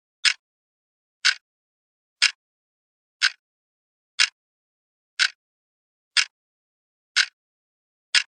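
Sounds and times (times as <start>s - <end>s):
clock ticking: 0.2s - 0.4s, 1.2s - 1.4s, 2.2s - 2.4s, 3.2s - 3.4s, 4.2s - 4.4s, 5.2s - 5.4s, 6.1s - 6.4s, 7.2s - 7.4s.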